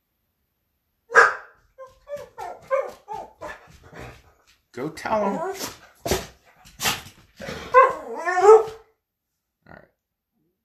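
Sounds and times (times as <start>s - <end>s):
dog barking at somebody outside: 1.1s - 3.6s, 7.6s - 8.8s
speech: 4.8s - 5.8s.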